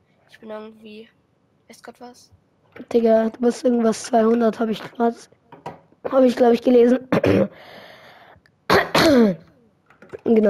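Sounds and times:
room hum: 0.0s - 10.4s
speech: 0.3s - 5.4s, 6.1s - 7.8s, 9.1s - 9.4s, 10.3s - 10.4s
coughing: 7.1s - 7.6s, 8.7s - 9.6s
rasping throat-clearing hack: 8.7s - 9.4s.

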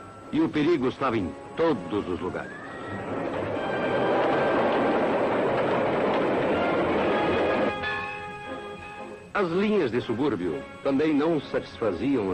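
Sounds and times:
speech: 0.3s - 3.1s, 9.4s - 12.3s
train rumbling along the tracks: 3.1s - 9.3s.

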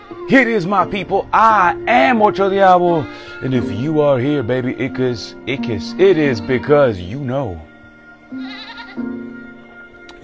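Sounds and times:
speech: 0.1s - 7.7s, 8.3s - 9.1s
goat bleating: 2.6s - 3.6s, 6.0s - 7.0s, 8.3s - 9.2s.

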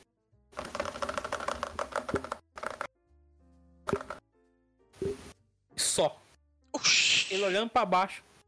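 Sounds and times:
mechanical keyboard clicking during gameplay: 0.6s - 2.9s
speech: 6.0s - 6.2s, 7.3s - 8.3s.

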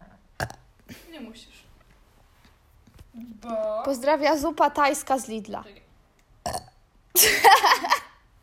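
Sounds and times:
electronic burp sound effect from phone app: 0.0s - 0.7s, 6.4s - 6.8s
speech: 1.2s - 1.7s, 3.2s - 5.8s, 7.2s - 7.9s.

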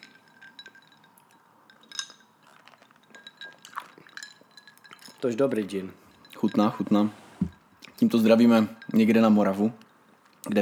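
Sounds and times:
glasses clinking in a toast: 0.0s - 10.6s
speech: 5.2s - 7.2s, 8.0s - 9.8s, 10.4s - 10.6s
faint shuffling: 5.4s - 9.2s
room noise: 6.0s - 9.1s.

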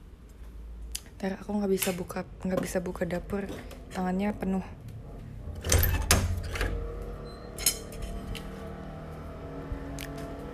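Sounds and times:
speech: 1.2s - 4.9s
motorcycle engines rumbling outside at night: 3.7s - 10.5s.

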